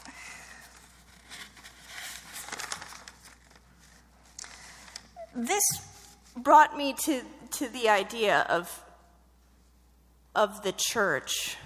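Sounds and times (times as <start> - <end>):
paper pages rustling and shuffling: 0.6 - 5.2
speech: 5.4 - 8.8, 10.4 - 11.6.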